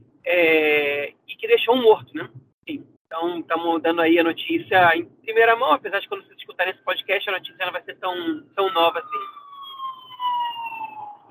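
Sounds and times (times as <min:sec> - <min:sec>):
speech: 0:00.3 - 0:00.7, 0:01.7 - 0:09.4
ambulance siren passing outside: 0:08.5 - 0:11.2.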